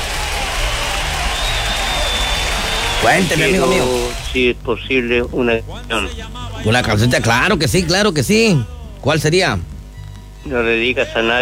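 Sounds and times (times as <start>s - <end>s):
applause on a morning call-in radio show: 0.0s - 4.3s
speech: 3.0s - 9.7s, 10.4s - 11.4s.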